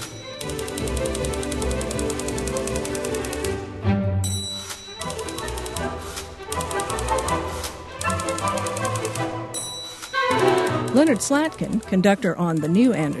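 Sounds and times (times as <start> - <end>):
bright typewriter carriage bell dinging: 0.0 - 1.5, 4.2 - 5.9, 8.0 - 13.1
typewriter played as a musical instrument clacking: 0.0 - 3.5, 4.5 - 13.1
lively orchestra playing: 0.2 - 12.9
speech: 11.0 - 13.1.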